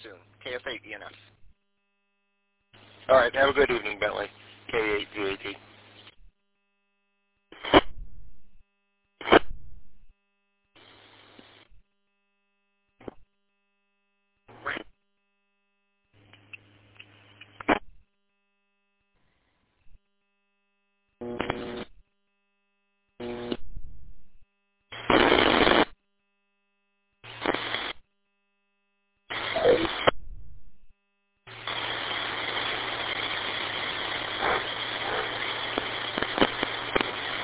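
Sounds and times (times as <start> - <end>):
radio static on an empty frequency: 0.0 - 1.4, 2.8 - 6.2, 7.5 - 8.0, 9.2 - 9.5, 14.5 - 14.9, 21.2 - 22.0, 23.2 - 23.7, 24.9 - 26.0, 27.2 - 28.0, 29.3 - 30.3, 31.5 - 37.4
speech: 0.5 - 1.3, 3.1 - 5.7.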